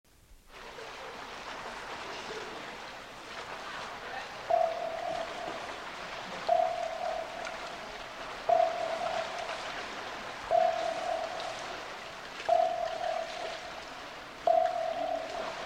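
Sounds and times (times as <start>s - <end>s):
submarine sonar ping: 4.4s - 15.6s.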